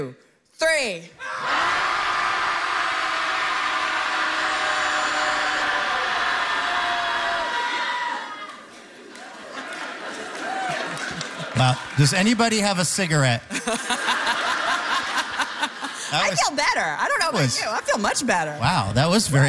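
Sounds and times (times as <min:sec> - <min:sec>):
speech: 0:00.0 - 0:01.5, 0:11.6 - 0:14.1, 0:16.1 - 0:19.4
group of people shouting together in a long loud roar: 0:01.2 - 0:08.6
laughter: 0:08.8 - 0:12.6, 0:13.4 - 0:16.6.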